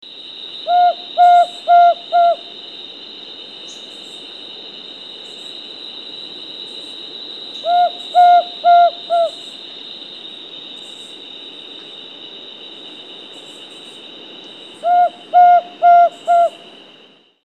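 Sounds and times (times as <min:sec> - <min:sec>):
Bare-shanked Screech-Owl calling: 0:00.6 - 0:02.5, 0:07.6 - 0:09.4, 0:14.8 - 0:16.6.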